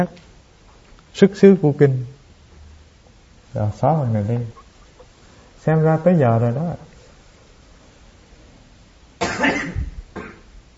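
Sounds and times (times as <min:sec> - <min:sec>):
speech: 0:00.0 - 0:00.3, 0:01.2 - 0:02.2, 0:03.5 - 0:04.6, 0:05.6 - 0:06.9
person coughing into the recording device: 0:09.2 - 0:10.5.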